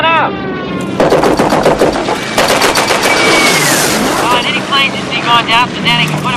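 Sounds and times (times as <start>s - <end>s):
steady bomber engine drone: 0.0s - 6.3s
machine gun fire from a bomber ball turret: 1.0s - 4.4s.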